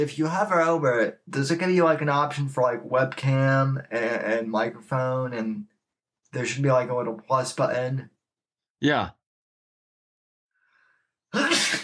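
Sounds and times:
speech: 0.0s - 5.7s, 6.3s - 8.1s, 8.8s - 9.2s, 11.3s - 11.8s
person sneezing: 11.3s - 11.8s.

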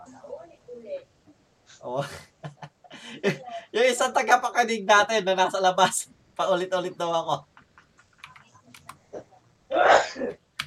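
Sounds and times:
speech: 1.8s - 2.3s, 3.2s - 7.5s
laughter: 1.9s - 3.6s
faint clicks: 7.4s - 9.3s
person sneezing: 9.7s - 10.4s.

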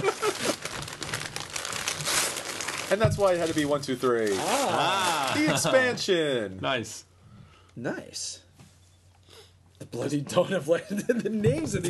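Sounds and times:
gift wrapping paper crinkling as holiday presents are wrapped: 0.0s - 5.6s
speech: 2.9s - 7.1s, 7.8s - 8.4s, 9.8s - 11.8s.

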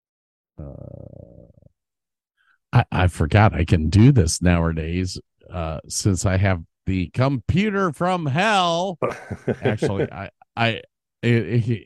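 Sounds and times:
speech: 0.6s - 1.0s, 2.7s - 11.8s
long loud deep guttural burp: 0.6s - 1.7s
laughter: 9.0s - 10.3s.

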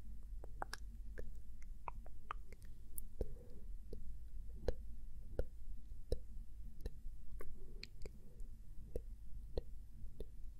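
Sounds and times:
low steady rumble: 0.0s - 10.5s
crisp tongue clicks and tsk noises: 0.4s - 4.0s, 5.4s - 8.2s, 8.9s - 10.4s.

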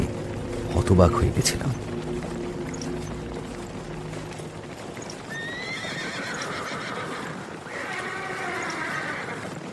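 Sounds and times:
horse hooves clip-clopping along a forest road: 0.0s - 9.7s
horse-drawn coach rolling rumble on a forest road: 0.7s - 9.7s
speech: 0.9s - 1.9s
horse whinnying: 5.3s - 9.6s.

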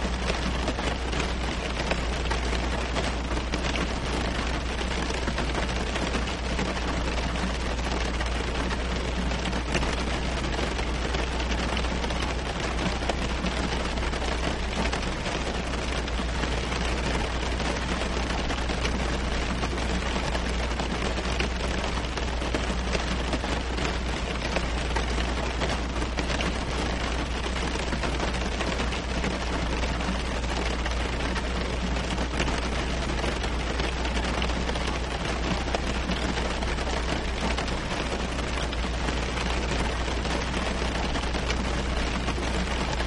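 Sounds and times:
rain falling on leaves and windows: 0.0s - 43.0s.

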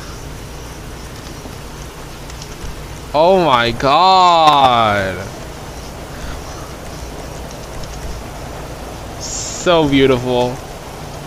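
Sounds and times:
steady rain in a video game: 0.0s - 11.2s
speech: 3.1s - 5.4s, 9.6s - 10.7s
person exclaiming: 3.2s - 5.3s.

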